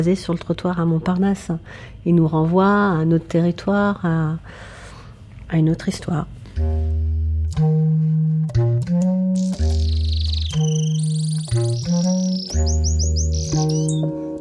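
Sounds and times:
speech: 0.0s - 4.8s, 5.5s - 6.7s, 7.5s - 9.5s
loud repeating low tones: 9.4s - 14.0s
canary singing: 9.4s - 14.2s.

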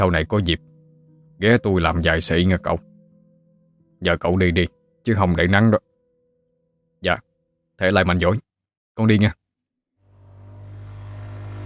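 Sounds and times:
speech: 0.0s - 0.7s, 1.4s - 2.9s, 4.0s - 5.9s, 7.0s - 8.4s, 9.0s - 9.4s
motorbike throttling up and speeding away from a fishing village: 10.0s - 11.6s.

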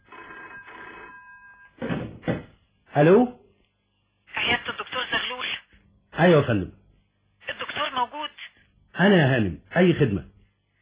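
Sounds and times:
telephone bell ringing in a doctor's clinic at night: 0.0s - 1.8s
speech: 3.0s - 3.4s, 6.2s - 6.8s, 9.0s - 10.3s.

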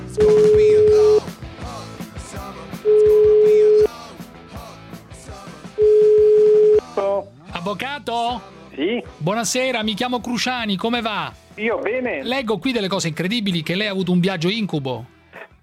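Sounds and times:
ringback tone of an outgoing phone call: 0.2s - 1.3s, 2.9s - 3.9s, 5.8s - 6.9s
speech: 7.7s - 15.1s.

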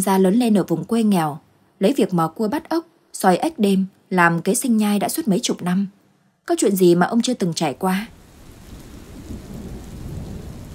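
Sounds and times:
speech: 0.0s - 8.2s
heavy rain from a windy night storm over countryside: 8.1s - 10.7s
low rolling thunder from a windy night storm over countryside: 8.2s - 10.7s.

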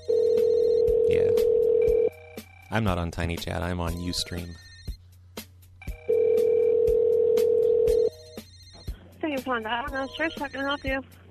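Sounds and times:
telephone ring tone: 0.0s - 2.6s, 4.5s - 5.0s, 5.9s - 9.1s
speech: 2.7s - 4.6s, 9.5s - 11.2s.

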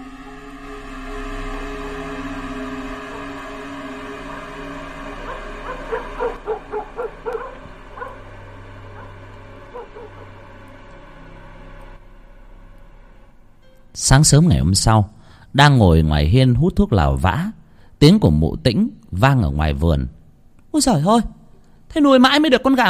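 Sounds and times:
frogs calling from the fields: 0.0s - 12.4s
dogs barking at night in a small village: 5.2s - 10.4s
speech: 14.1s - 22.8s.

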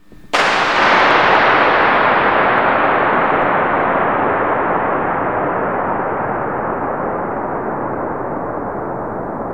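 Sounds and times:
gunshot with long echo: 0.0s - 9.4s.

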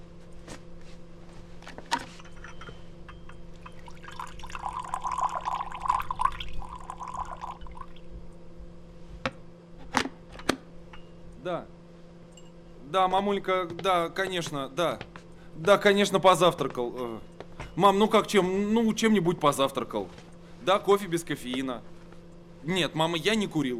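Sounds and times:
low steady hum: 0.0s - 23.7s
water from a freshly boiled kettle pouring into a cup: 3.6s - 8.1s
speech: 13.0s - 21.9s, 22.6s - 23.7s.

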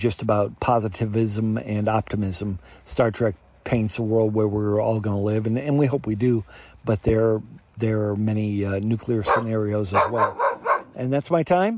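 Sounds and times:
speech: 0.0s - 11.7s
pet dog barking in short bursts: 9.2s - 11.0s.

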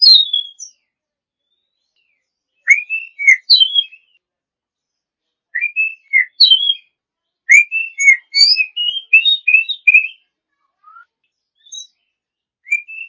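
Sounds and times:
Oriental magpie-robin song: 0.0s - 0.8s, 1.4s - 4.2s, 5.5s - 6.9s, 7.5s - 10.2s, 10.8s - 13.0s.

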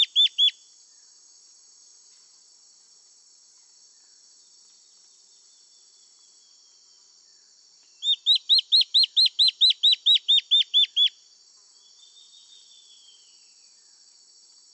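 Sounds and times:
Black-faced antbird Myrmoborus myotherinus ochrolaemus singing: 0.0s - 1.1s, 5.2s - 14.2s.

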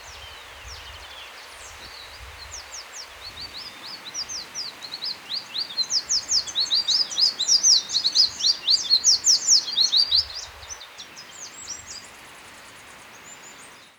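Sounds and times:
Black-crested warbler Myiothlypis nigrocristata singing: 0.1s - 12.2s.

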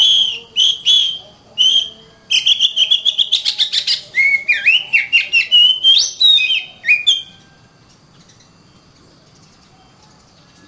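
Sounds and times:
Oriental magpie-robin singing whistled notes: 0.0s - 7.6s.

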